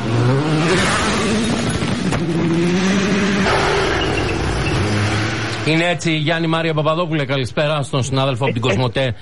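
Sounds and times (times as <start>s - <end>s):
race car engine at full throttle in sixth gear through a corner: 0.0s - 6.1s
speech: 5.7s - 9.1s.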